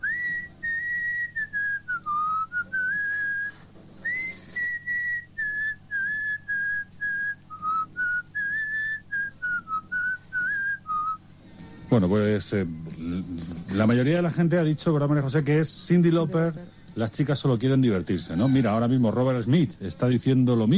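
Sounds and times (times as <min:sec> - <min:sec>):
person whistling a song melody: 0:00.0 - 0:11.2
faint low hum: 0:00.0 - 0:20.7
speech: 0:12.0 - 0:20.7.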